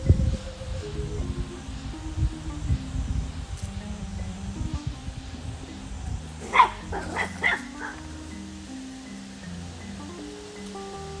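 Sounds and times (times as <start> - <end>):
low steady hum: 0.0 - 11.1
dog barking: 6.4 - 8.0.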